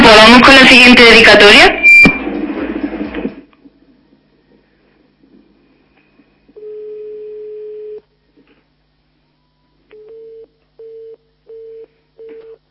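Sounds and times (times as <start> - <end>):
speech: 0.2 - 1.8
telephone busy signal beeps: 1.7 - 2.2, 6.6 - 8.0, 9.5 - 12.6
rustling noise: 2.2 - 6.4
steady telephone tone: 6.6 - 8.0, 9.4 - 12.6.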